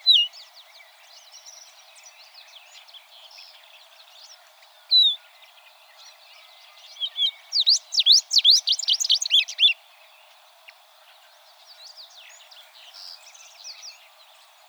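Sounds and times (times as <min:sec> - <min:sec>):
tropeiro seedeater singing swooping whistled notes: 0:00.0 - 0:00.4, 0:06.9 - 0:09.8
tropeiro seedeater soft twittering: 0:07.0 - 0:09.8.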